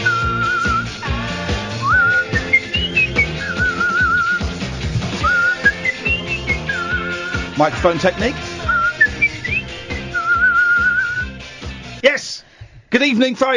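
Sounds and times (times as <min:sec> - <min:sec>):
person whistling a clear wavering melody: 0:00.0 - 0:01.1, 0:01.7 - 0:04.6, 0:05.2 - 0:07.6, 0:08.6 - 0:11.4
steady rhythmic musical backing: 0:00.0 - 0:12.0
speech: 0:07.6 - 0:08.5, 0:12.9 - 0:13.5.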